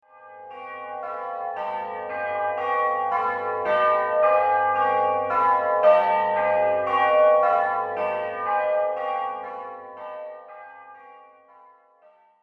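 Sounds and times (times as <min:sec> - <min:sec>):
wedding bells ringing: 0:00.2 - 0:11.2.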